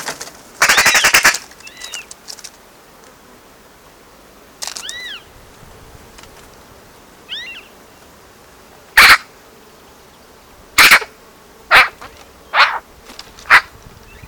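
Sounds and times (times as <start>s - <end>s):
Eurasian magpie Pica pica chattering with harsh rattling and nasal calls: 0.6s - 2.0s, 9.0s - 9.2s, 10.8s - 11.1s, 11.7s - 12.8s.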